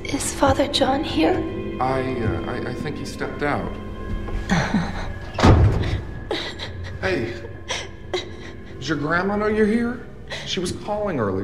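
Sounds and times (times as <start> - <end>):
speech: 0.4 - 6.0, 7.0 - 7.5, 8.8 - 11.4
doors being shut by a man with a heavy low thud: 5.4 - 6.1.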